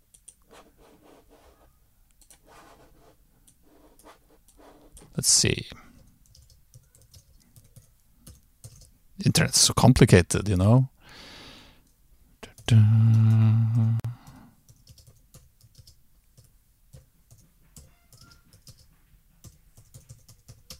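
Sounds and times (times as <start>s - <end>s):
typing on a computer keyboard: 2.2s - 2.4s, 6.0s - 8.9s, 14.2s - 20.7s
speech: 3.8s - 5.9s, 9.4s - 10.9s, 12.7s - 13.1s.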